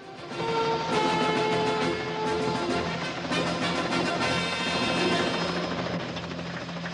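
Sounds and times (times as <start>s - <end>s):
helicopter lifting out of a camp and flying away: 0.0s - 6.9s.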